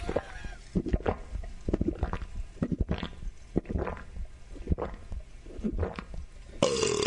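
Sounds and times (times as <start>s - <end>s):
woman gulping beer from a prosthetic leg at a basketball game: 0.0s - 7.0s.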